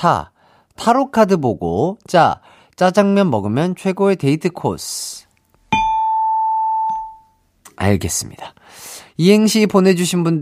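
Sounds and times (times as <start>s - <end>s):
speech: 0.0s - 5.3s, 7.8s - 10.4s
bell-like ding-dong-dang approval chime in a broadcast quiz: 5.7s - 7.4s.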